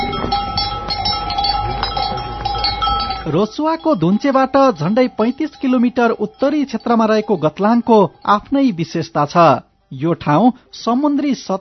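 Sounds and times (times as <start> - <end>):
clanking bells of grazing sheep, goats and yak-cattle in Gatlang, Nepal: 0.0 - 9.5
speech: 3.3 - 11.5.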